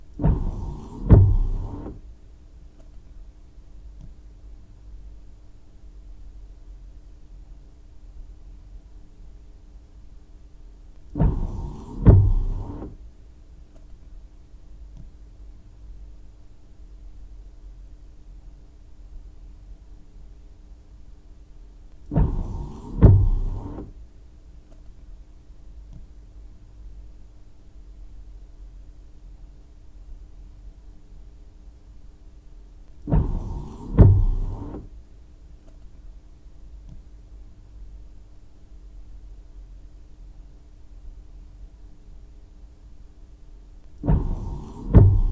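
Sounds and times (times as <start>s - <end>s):
windshield wiper: 0.2s - 2.0s, 11.2s - 13.0s, 22.1s - 23.9s, 33.0s - 34.9s, 44.0s - 45.2s.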